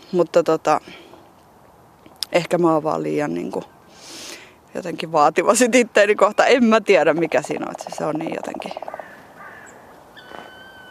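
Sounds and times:
speech: 0.1s - 1.0s, 2.3s - 4.1s, 4.7s - 8.8s
woodpecker calling outdoors: 6.1s - 10.8s.

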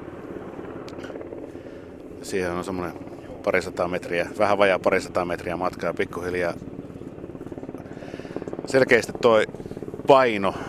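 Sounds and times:
large NH90 helicopter rotor rumble and engine whine: 0.0s - 10.6s
speech: 2.2s - 6.7s, 8.7s - 10.6s.

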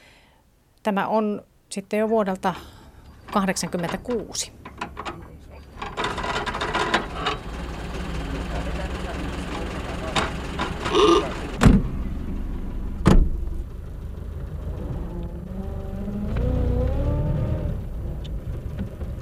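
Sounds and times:
speech: 0.8s - 4.6s
vintage 1926 Chrysler car with Maxwell engine running: 5.8s - 16.9s, 17.8s - 19.2s.

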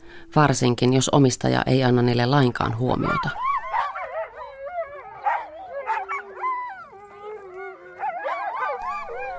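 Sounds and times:
speech: 0.2s - 3.5s
pack of Greenland husky sled dogs barking and howling: 3.0s - 9.3s.

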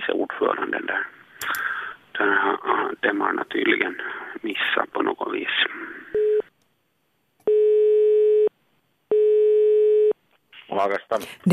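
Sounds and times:
speech: 0.4s - 1.6s, 2.2s - 6.2s, 10.7s - 11.5s
telephone ringback tone while a call connects: 7.5s - 8.5s, 9.1s - 10.2s.

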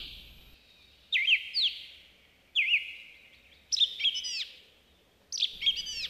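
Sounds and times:
male song thrush singing in a forest: 0.0s - 6.0s
soft forest echo: 0.0s - 6.0s.

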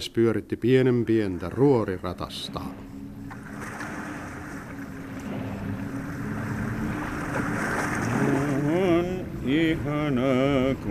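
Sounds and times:
speech: 0.0s - 2.9s, 9.5s - 10.8s
water rushing and churning with a windy hiss: 0.0s - 10.8s
brief rising wavering tone: 1.6s - 10.8s.

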